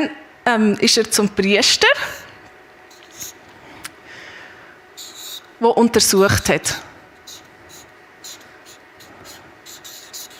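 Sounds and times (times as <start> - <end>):
speech: 0.0 - 2.2, 5.6 - 6.9
pen running dry scratching on paper: 2.9 - 3.4, 5.0 - 5.5, 7.2 - 10.3.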